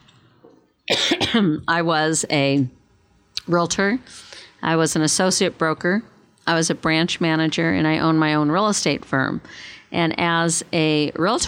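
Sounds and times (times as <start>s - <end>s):
harsh cough: 0.9s - 1.6s
speech: 1.3s - 2.8s, 3.5s - 11.4s.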